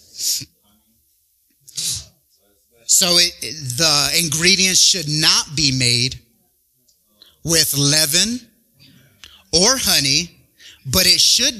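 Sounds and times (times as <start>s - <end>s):
person sneezing: 1.7s - 2.1s
speech: 3.0s - 6.2s, 7.4s - 8.5s, 9.5s - 11.5s.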